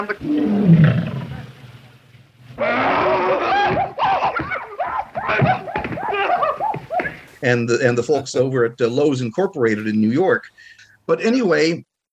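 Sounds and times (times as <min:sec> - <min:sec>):
speech: 0:00.0 - 0:01.2, 0:07.4 - 0:11.9
studio logo lion roar sound effect: 0:00.2 - 0:01.6, 0:02.5 - 0:04.0
laughter: 0:03.0 - 0:07.3.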